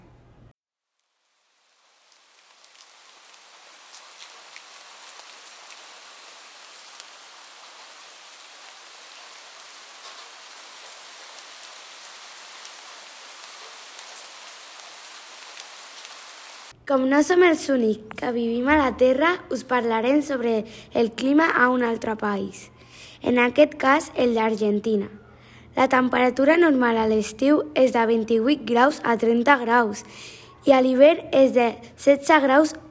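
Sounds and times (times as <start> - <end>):
rain falling: 0.9 - 16.8
speech: 16.9 - 25.2, 25.8 - 32.8.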